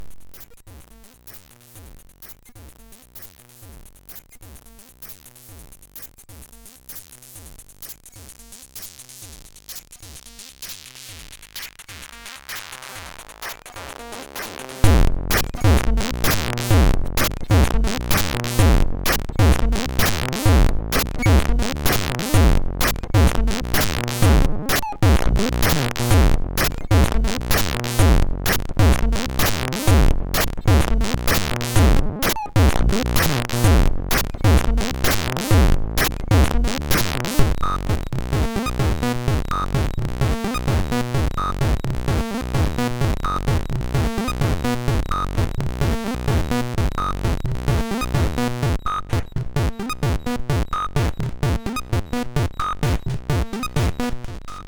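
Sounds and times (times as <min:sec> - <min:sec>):
MOS6581R2 sound chip loop: 0:13.4 - 0:54.6.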